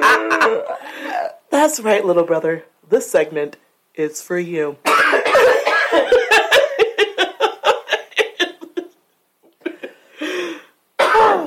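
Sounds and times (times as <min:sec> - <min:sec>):
laughter: 0:00.0 - 0:00.8, 0:05.5 - 0:08.9
raspy breath: 0:00.8 - 0:01.3, 0:09.9 - 0:10.8
speech: 0:01.6 - 0:05.6
loud fit of rapid harsh coughs: 0:04.9 - 0:06.7, 0:11.0 - 0:11.4.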